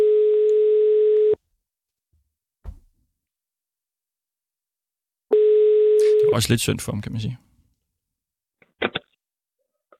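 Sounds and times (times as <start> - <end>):
telephone ringing tone on an outgoing phone call: 0.0 - 1.4, 5.3 - 6.3
brief clunk: 2.6 - 2.9
speech: 6.3 - 7.5.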